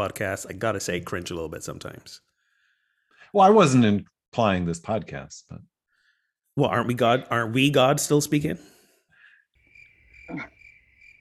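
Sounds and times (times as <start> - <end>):
speech: 0.0 - 2.3, 3.3 - 5.7, 6.6 - 8.8, 10.3 - 10.6
crickets chirping: 9.1 - 11.1.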